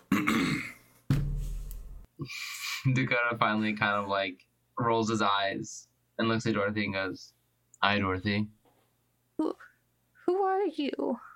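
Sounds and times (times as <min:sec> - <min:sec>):
person clearing throat: 0:00.0 - 0:00.8
speech: 0:02.2 - 0:08.6, 0:09.4 - 0:09.6, 0:10.4 - 0:11.3.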